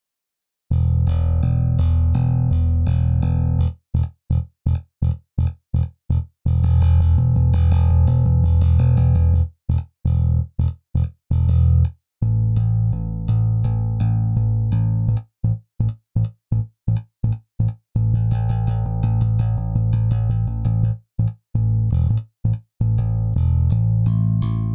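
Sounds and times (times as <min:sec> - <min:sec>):
J Bass bass guitar played with fingers on default setting: 0:00.7 - 0:24.7.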